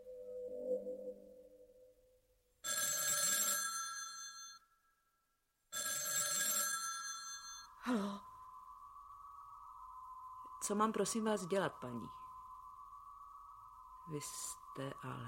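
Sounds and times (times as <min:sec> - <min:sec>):
soft low tone: 0:00.0 - 0:02.4, 0:07.7 - 0:15.2
telephone bell ringing: 0:02.6 - 0:04.7, 0:05.7 - 0:07.7
speech: 0:07.9 - 0:08.3, 0:10.7 - 0:12.2, 0:14.1 - 0:15.2.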